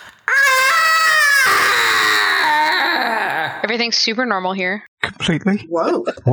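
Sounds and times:
inhuman scream from beneath wooden floor: 0.0 - 3.7
speech: 3.6 - 6.3.

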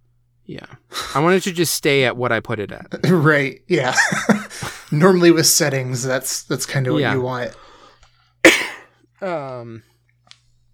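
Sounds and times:
speech: 0.5 - 7.6, 9.2 - 9.9
laughter: 3.0 - 5.1
person coughing: 8.5 - 9.0.

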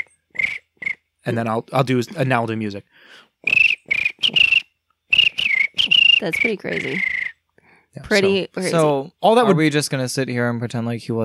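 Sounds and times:
person whistling an impression of a cricket's chirp: 0.0 - 1.0, 3.4 - 7.4
speech: 1.2 - 3.7, 6.2 - 7.2, 8.0 - 11.2.

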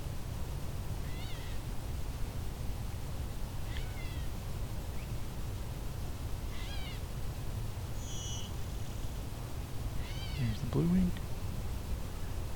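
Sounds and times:
low outdoor rumble: 0.0 - 12.5
gray catbird mewing calls: 6.5 - 7.0, 8.0 - 8.8, 10.0 - 10.6
speech: 10.7 - 11.2.

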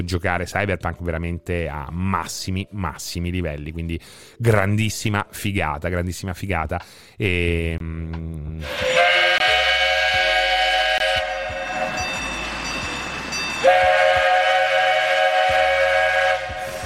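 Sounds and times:
speech: 0.0 - 9.0
steam train chugging: 8.6 - 16.8.

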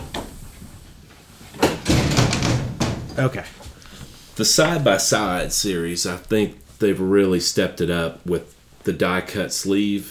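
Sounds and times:
dog banging against a pub door to get in: 1.6 - 3.2
speech: 3.2 - 3.6, 4.4 - 10.0.

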